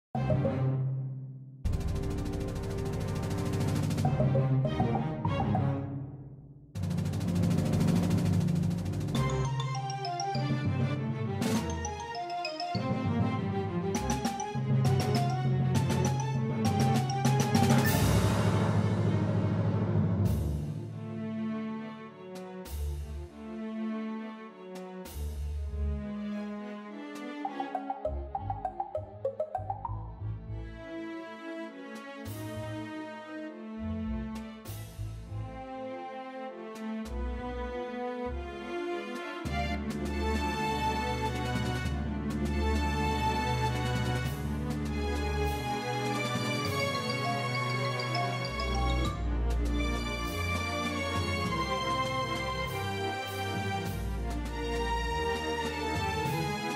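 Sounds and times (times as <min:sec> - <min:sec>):
string orchestra: 0:00.1 - 0:01.0, 0:01.7 - 0:06.2, 0:06.8 - 0:28.6, 0:30.1 - 0:56.7
percussion: 0:01.6 - 0:05.8, 0:06.8 - 0:21.0, 0:27.2 - 0:30.2, 0:39.1 - 0:56.7.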